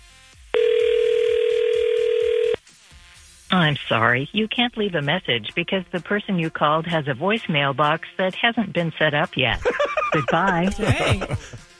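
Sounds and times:
telephone ringback tone as a call is placed: 0:00.6 - 0:02.6
speech: 0:03.6 - 0:11.7
laughter: 0:09.5 - 0:11.6.

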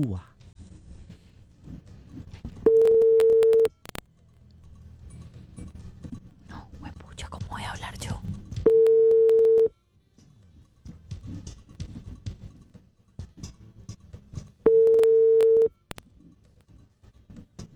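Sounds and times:
speech: 0:00.0 - 0:00.3
telephone busy tone after a rejected call: 0:02.7 - 0:04.0, 0:08.7 - 0:09.7, 0:14.7 - 0:16.0.

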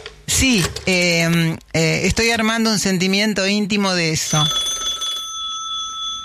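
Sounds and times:
speech: 0:00.4 - 0:04.7
old telephone bell ringing: 0:04.2 - 0:06.2.

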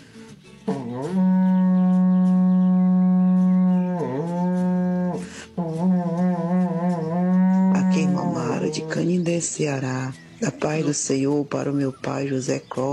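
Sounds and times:
speech: 0:00.7 - 0:01.3, 0:09.0 - 0:12.9
berrante cattle horn being blown: 0:00.7 - 0:09.4.

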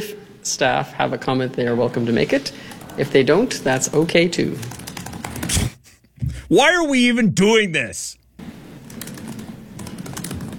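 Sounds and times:
low hum: 0:00.0 - 0:10.5
speech: 0:00.4 - 0:04.8, 0:06.5 - 0:08.2
typing on a computer keyboard: 0:04.6 - 0:05.5, 0:08.8 - 0:10.5.

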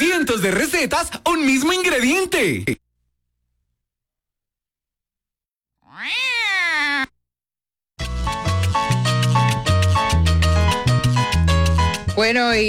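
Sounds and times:
speech: 0:00.3 - 0:02.8
drawn-out cat meow: 0:05.8 - 0:07.2
upbeat music: 0:08.0 - 0:12.6.

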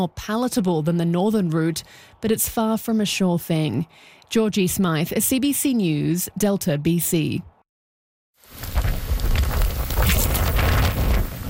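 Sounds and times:
speech: 0:00.0 - 0:07.5
heavy torrential rain pouring down: 0:08.4 - 0:11.4.

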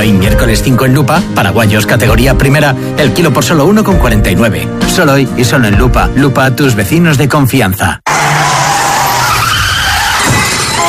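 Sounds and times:
speech: 0:00.0 - 0:08.2
car tires skidding across pavement: 0:08.1 - 0:10.8.

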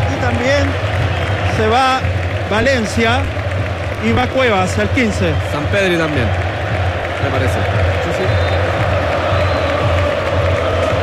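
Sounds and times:
scattered applause in a stadium: 0:00.0 - 0:11.0
speech: 0:00.3 - 0:00.9, 0:01.6 - 0:03.4, 0:04.0 - 0:06.5, 0:07.2 - 0:08.3
large stadium crowd singing together: 0:07.9 - 0:11.0.

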